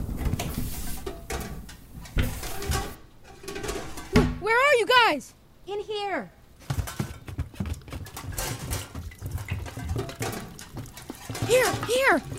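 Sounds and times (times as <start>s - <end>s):
metal pots and pans clanking and clattering: 0.3s - 4.4s, 6.6s - 12.3s
speech: 5.1s - 6.4s, 11.5s - 12.3s.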